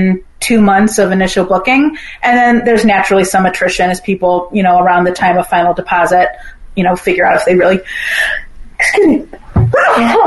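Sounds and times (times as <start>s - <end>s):
speech: 0.0s - 10.2s
sneeze: 9.7s - 10.2s.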